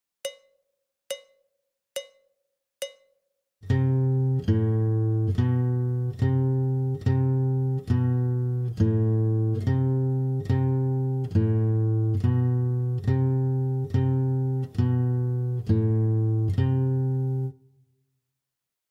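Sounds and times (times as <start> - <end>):
guitar warm up in low C: 3.7 - 17.6.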